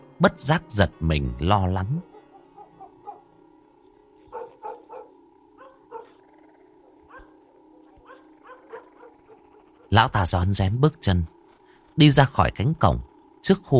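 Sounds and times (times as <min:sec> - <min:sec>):
speech: 0:00.2 - 0:02.1, 0:09.9 - 0:11.4, 0:12.0 - 0:13.7
low hum: 0:01.9 - 0:13.7
dogs barking at night: 0:02.0 - 0:03.4, 0:04.2 - 0:09.9.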